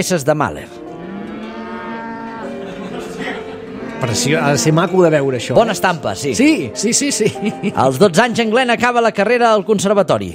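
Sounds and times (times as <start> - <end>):
speech: 0.0 - 0.9, 4.0 - 10.3
cattle mooing in a field: 0.7 - 5.5
laughter: 2.3 - 5.0, 7.0 - 8.1.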